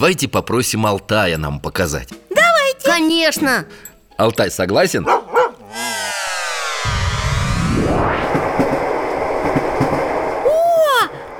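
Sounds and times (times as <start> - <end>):
speech: 0.0 - 2.2, 2.9 - 5.2
brief rising whistle: 5.7 - 11.3
train rumbling: 5.7 - 11.3.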